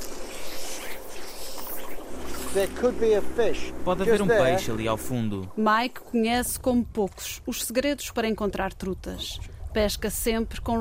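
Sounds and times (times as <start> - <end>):
low boat engine drone: 0.0 - 6.1
wind over a lake: 0.0 - 10.7
boat wash rushing across lake water: 1.8 - 7.4
speech: 2.6 - 10.7.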